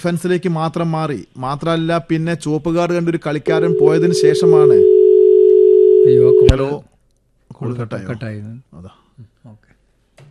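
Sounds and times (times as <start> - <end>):
speech: 0.0 - 4.9, 6.1 - 6.9, 7.6 - 9.6
telephone line tone after a call is cut off: 3.5 - 6.6.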